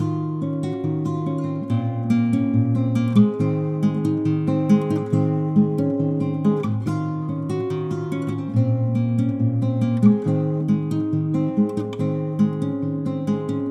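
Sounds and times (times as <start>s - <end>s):
nylon guitar loop: 0.0s - 13.6s.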